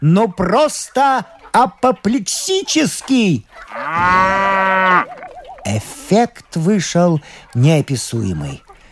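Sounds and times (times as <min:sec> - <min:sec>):
speech: 0:00.0 - 0:08.6
cow mooing: 0:03.7 - 0:05.1.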